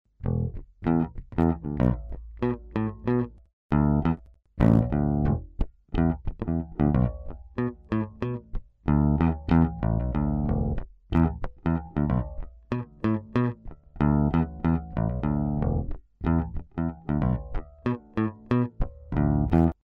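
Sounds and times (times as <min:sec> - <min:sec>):
guitars with grabber pickup: 0:00.2 - 0:19.8.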